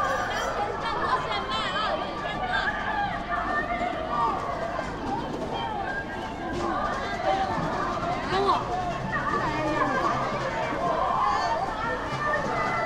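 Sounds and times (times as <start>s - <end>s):
busy night market crowd babble: 0.0s - 12.8s.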